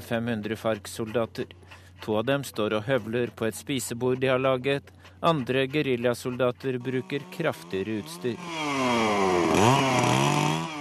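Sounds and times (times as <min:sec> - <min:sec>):
speech: 0:00.1 - 0:10.1
chainsaw cutting timber for a house frame at a camp: 0:05.4 - 0:10.8.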